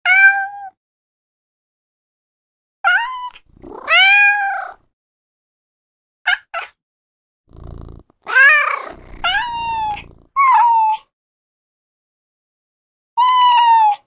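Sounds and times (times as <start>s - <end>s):
cat: 0.0s - 0.8s, 2.9s - 4.9s, 6.3s - 6.8s, 7.5s - 11.1s, 13.2s - 14.0s.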